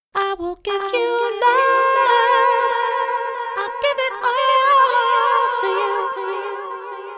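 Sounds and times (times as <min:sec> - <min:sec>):
vocals with delay: 0:00.2 - 0:07.1.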